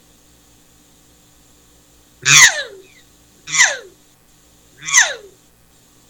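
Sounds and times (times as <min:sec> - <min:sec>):
growly hunting call blown while humming: 0:02.2 - 0:02.9, 0:03.5 - 0:03.9, 0:04.8 - 0:05.3.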